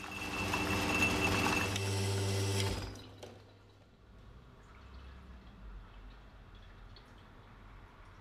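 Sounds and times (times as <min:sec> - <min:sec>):
running espresso machine pump humming and buzzing: 0:00.0 - 0:03.0
faint dripping from espresso machine: 0:03.4 - 0:08.1.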